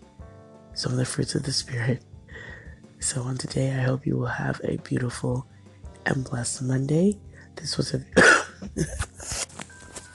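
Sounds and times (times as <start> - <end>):
speech: 0.8 - 9.4
sudden harsh breathy cough: 8.2 - 9.4.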